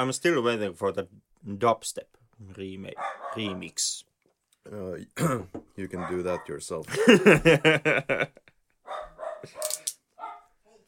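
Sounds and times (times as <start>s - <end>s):
speech: 0.0s - 8.5s, 9.4s - 9.7s
dog barking in a studio: 3.0s - 3.8s, 6.0s - 6.6s, 8.8s - 10.8s
laughter: 6.9s - 8.6s.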